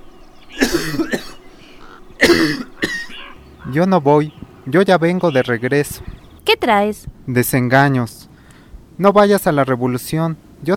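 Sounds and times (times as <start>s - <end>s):
old man coughing: 0.5s - 3.3s
speech: 3.7s - 8.2s, 9.0s - 10.7s.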